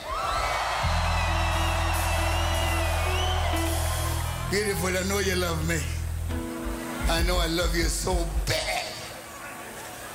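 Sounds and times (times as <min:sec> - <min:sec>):
wavering high whoops: 0:00.0 - 0:04.8
big crowd screaming and cheering: 0:00.0 - 0:07.4
speech: 0:04.5 - 0:06.4, 0:07.1 - 0:08.7.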